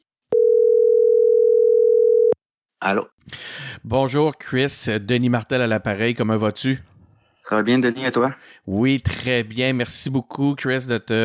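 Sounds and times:
telephone dialing tone while placing a call: 0:00.3 - 0:02.4
speech: 0:02.8 - 0:11.2.

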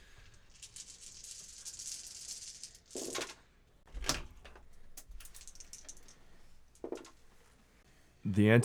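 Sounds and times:
handful of dice clattering across a hard surface: 0:00.0 - 0:03.5, 0:04.6 - 0:07.3
speech: 0:08.3 - 0:08.6.

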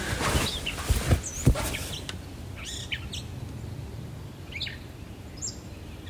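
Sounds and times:
soft rustles or taps: 0:00.0 - 0:02.2
birds chirping outdoors in the morning: 0:00.0 - 0:06.0.

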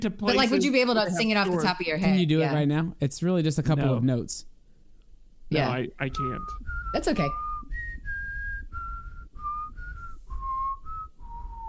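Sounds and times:
speech: 0:00.0 - 0:04.5, 0:05.5 - 0:07.4
person whistling a short simple tune: 0:06.2 - 0:11.6.

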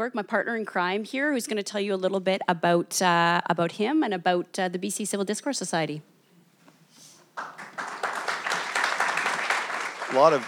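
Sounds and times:
speech: 0:00.0 - 0:06.1, 0:10.1 - 0:10.4
audience crowd cheering and clapping: 0:07.4 - 0:10.4.

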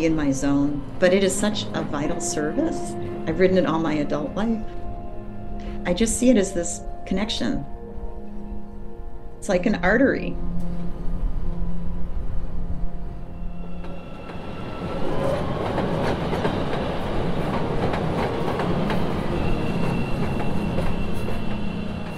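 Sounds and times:
speech: 0:00.0 - 0:04.8, 0:05.8 - 0:07.8, 0:09.4 - 0:10.5
subway train rolling along the tracks: 0:00.0 - 0:05.0, 0:10.5 - 0:22.1.

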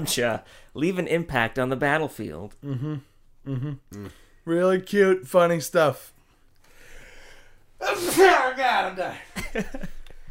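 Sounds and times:
speech: 0:00.0 - 0:06.2, 0:07.8 - 0:10.0
person sneezing: 0:07.8 - 0:08.5.

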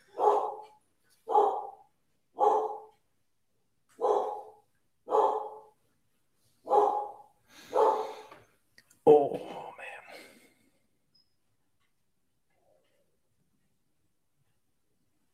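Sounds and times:
dogs barking in short sharp yaps: 0:00.0 - 0:03.0, 0:03.9 - 0:05.8, 0:06.6 - 0:08.3.

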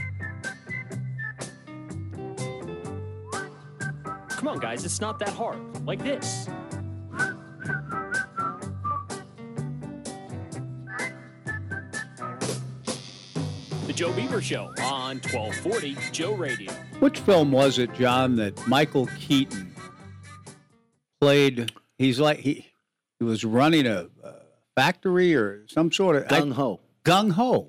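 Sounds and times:
people whistling a tune: 0:00.0 - 0:01.6, 0:03.3 - 0:04.6, 0:07.1 - 0:09.2, 0:10.9 - 0:12.6, 0:13.9 - 0:16.6
speech: 0:04.4 - 0:06.6, 0:14.0 - 0:19.7, 0:21.2 - 0:24.2, 0:24.8 - 0:27.6
loud musical backing with steady drumbeat: 0:13.7 - 0:19.6.

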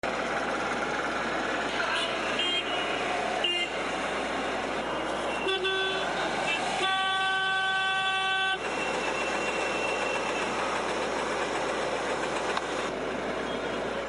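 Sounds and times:
busy road traffic with car engines rumbling: 0:00.0 - 0:14.0
dense continuous wash of street noise: 0:00.0 - 0:14.0
car horns honking in holiday traffic: 0:01.8 - 0:04.0, 0:04.8 - 0:10.8.

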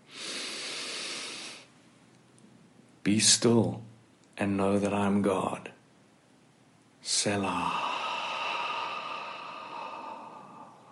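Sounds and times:
slow deep breath taken during a guided prayer: 0:00.0 - 0:01.7, 0:07.6 - 0:10.8
speech: 0:03.1 - 0:05.7, 0:07.0 - 0:07.8.

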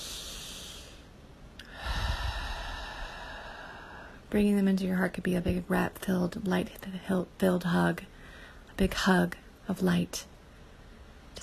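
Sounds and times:
deep breath during a guided meditation: 0:00.0 - 0:04.2, 0:08.2 - 0:08.7
speech: 0:04.3 - 0:08.2, 0:08.8 - 0:10.3.

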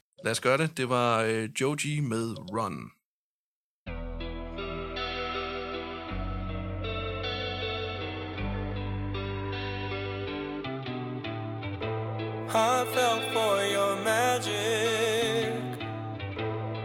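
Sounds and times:
speech: 0:00.2 - 0:03.0
effects-laden distorted guitar with chorus in a recorded song: 0:03.9 - 0:16.8
sustained bass notes in a recorded song: 0:03.9 - 0:16.8.

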